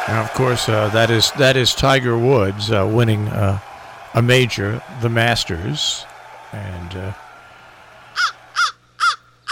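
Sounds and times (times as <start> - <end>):
speech: 0.1 - 7.2
crow cawing: 8.2 - 9.5.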